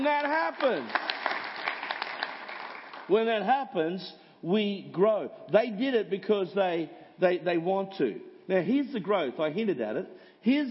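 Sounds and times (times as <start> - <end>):
speech: 0.0 - 1.1, 3.1 - 10.6
scattered audience clapping at a church service: 0.0 - 3.2.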